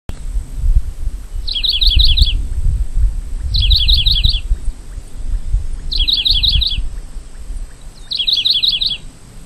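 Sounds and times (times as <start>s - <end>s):
Saltatricula tricolor calling: 1.3s - 2.5s, 3.3s - 9.4s.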